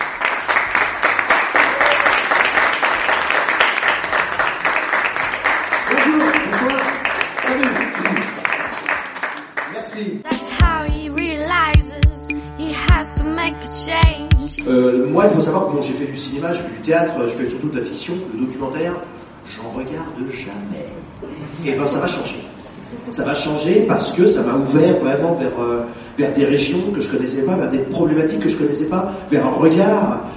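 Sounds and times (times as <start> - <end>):
crowd applauding in a room: 0.0 - 10.2
loud music with a pulsing beat: 10.3 - 14.7
speech: 15.3 - 22.4, 23.1 - 30.3.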